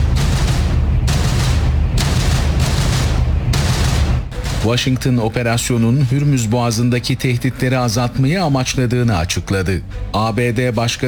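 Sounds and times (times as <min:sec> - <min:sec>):
explosions in southern Iran: 0:00.0 - 0:05.3
heavy continuous low rumbling: 0:00.0 - 0:07.1
speech: 0:04.7 - 0:11.0.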